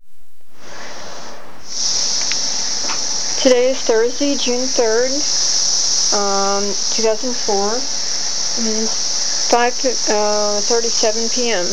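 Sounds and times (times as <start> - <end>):
broad rushing background noise: 0.1 - 11.7
cicadas producing a steady high hissing buzz: 0.5 - 11.7
speech: 3.4 - 8.0, 8.6 - 11.7.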